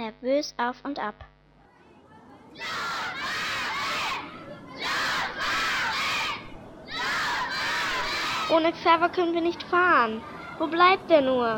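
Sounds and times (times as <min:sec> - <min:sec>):
speech: 0:00.1 - 0:01.4, 0:02.6 - 0:03.3, 0:08.5 - 0:11.5
school class of children shouting loudly together: 0:02.6 - 0:08.7.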